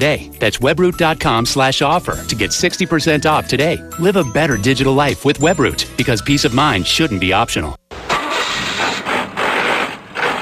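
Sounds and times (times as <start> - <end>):
speech: 0.0 - 7.8
car engine with a faulty transmission grinding and straining: 7.9 - 10.4.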